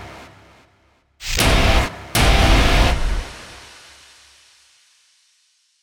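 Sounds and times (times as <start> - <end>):
hard distorted ending: 1.2 - 3.6.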